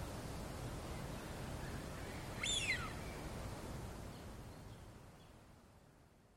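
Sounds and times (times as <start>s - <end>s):
soft background hiss: 0.0s - 6.3s
Eurasian wigeon whistled call: 2.1s - 3.1s.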